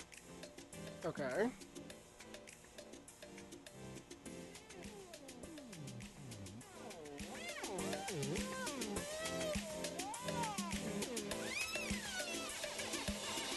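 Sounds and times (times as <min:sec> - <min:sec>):
steady electronic beat: 0:00.0 - 0:13.5
speech: 0:01.0 - 0:01.6
swooping whiny high-pitched sounds bending up and down: 0:04.5 - 0:13.5.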